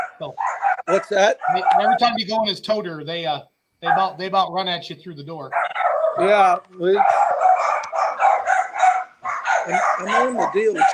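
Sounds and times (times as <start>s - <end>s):
dogs barking at home: 0.0s - 2.2s, 3.8s - 4.2s, 5.5s - 10.9s
speech: 0.2s - 7.3s, 9.7s - 10.9s.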